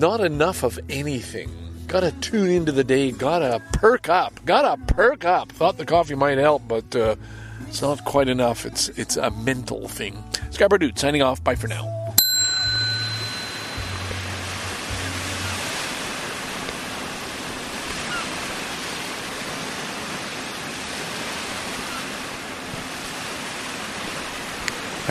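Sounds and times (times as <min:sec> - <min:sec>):
speech: 0:00.0 - 0:12.0
brief ringing tone: 0:12.2 - 0:14.4
ocean waves on a pebble beach: 0:12.5 - 0:25.0.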